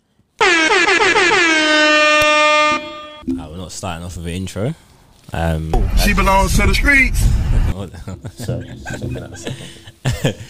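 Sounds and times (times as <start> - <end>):
air horn blast: 0.4 - 3.2
speech: 3.8 - 10.4
laughter: 7.8 - 10.4.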